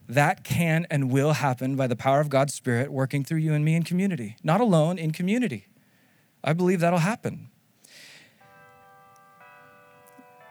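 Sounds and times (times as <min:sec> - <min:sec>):
speech: 0:00.1 - 0:05.7, 0:06.4 - 0:07.5
church bell tolling: 0:08.4 - 0:10.4.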